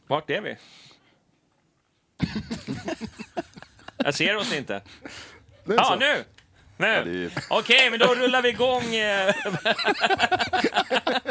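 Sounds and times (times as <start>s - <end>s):
speech: 0.1s - 0.9s, 2.2s - 3.4s, 4.0s - 11.3s
person coughing into the microphone: 2.2s - 3.4s
laughter: 2.2s - 6.2s, 6.9s - 11.3s.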